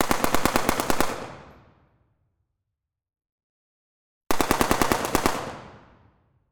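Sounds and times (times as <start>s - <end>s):
AK5 7.62mm rifle firing long bursts in a large hall: 0.0s - 1.6s, 4.3s - 5.9s.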